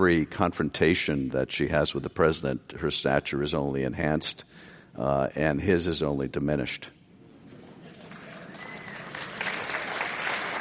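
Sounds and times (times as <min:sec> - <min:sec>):
speech: 0:00.0 - 0:07.0
audience applause: 0:08.0 - 0:10.5.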